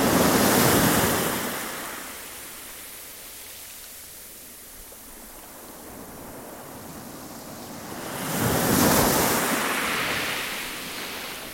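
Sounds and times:
faint wind: 0.0 - 11.5
waves crashing on a stony beach in Teignmouth: 0.0 - 11.5.

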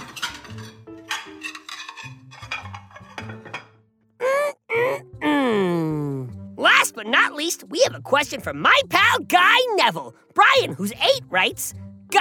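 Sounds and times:
dirty dishes and cutlery from the sink clattering and clinking: 0.0 - 3.8
loud vocal groans and munching-like moans with sliding pitch: 4.2 - 6.5
speech: 7.0 - 12.1.

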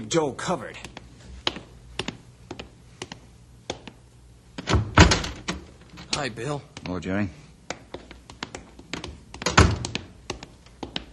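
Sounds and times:
speech: 0.0 - 1.0, 6.2 - 7.4
door opening with clicks and thunks: 4.6 - 6.3, 9.0 - 10.2
door rattling as it swings open: 4.6 - 6.3, 9.4 - 10.1.

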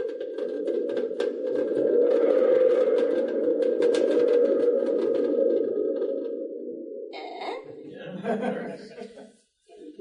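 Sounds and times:
wooden thunder tube spring rumbling: 0.0 - 7.1
laughter: 7.7 - 9.9.

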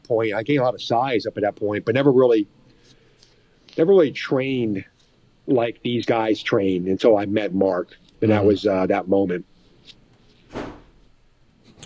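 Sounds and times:
speech: 0.1 - 2.6, 3.8 - 4.9, 5.5 - 9.5
door slammed shut by the wind in a house: 10.5 - 11.0.

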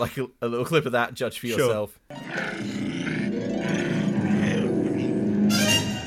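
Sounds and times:
speech: 0.0 - 2.8
person imitating a dog growling: 2.2 - 5.5.

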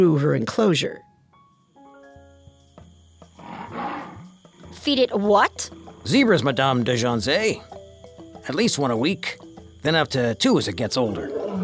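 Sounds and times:
speech: 0.0 - 1.1, 4.8 - 7.8, 8.4 - 11.6
big cat roaring: 3.4 - 4.4, 11.1 - 11.6.

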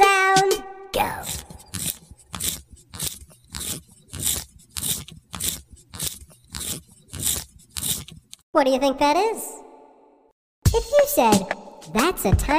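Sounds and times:
pencil being sharpened: 1.0 - 8.4
speech: 8.6 - 9.5, 10.8 - 12.5.

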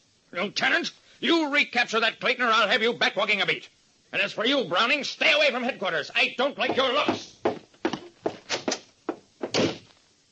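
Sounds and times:
speech: 0.3 - 7.4
heavy footsteps on a hard floor: 6.6 - 9.8.

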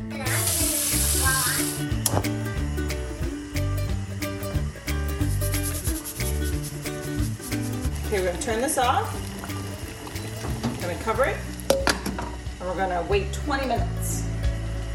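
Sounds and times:
music: 0.0 - 14.9
cold water gushing from a tap into a pot: 0.2 - 2.2, 7.8 - 12.4
speech: 8.2 - 9.2, 11.0 - 11.4, 12.7 - 14.2.

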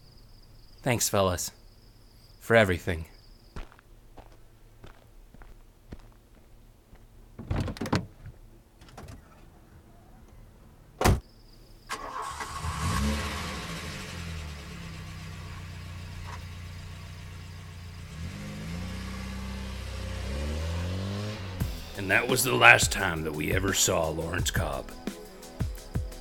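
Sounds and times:
speech: 0.8 - 1.6, 2.4 - 3.1, 22.3 - 25.1
footsteps: 3.6 - 8.4
car door thumping shut: 7.4 - 9.4, 11.0 - 11.2
car engine starting, revving and accelerating as the car pulls away: 12.0 - 24.2.

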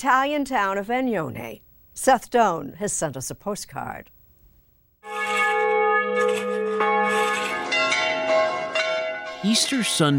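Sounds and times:
speech: 0.0 - 4.2, 9.4 - 10.1
church bells ringing: 5.1 - 10.1.

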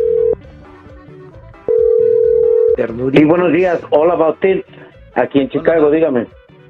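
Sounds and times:
telephone ringing tone beep over the line: 0.0 - 0.4, 1.7 - 2.8
speech: 2.8 - 6.4.

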